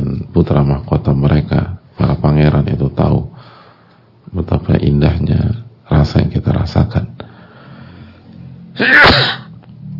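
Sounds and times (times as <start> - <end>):
low steady hum: 0.0 - 9.9
speech: 0.4 - 1.6
sharp sneeze: 8.8 - 9.5.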